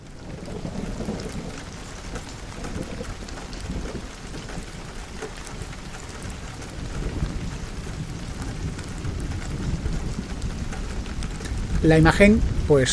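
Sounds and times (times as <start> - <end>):
heavy rain pattering against a window: 0.0 - 12.9
thunder rumbling: 0.0 - 12.9
speech: 11.8 - 12.9.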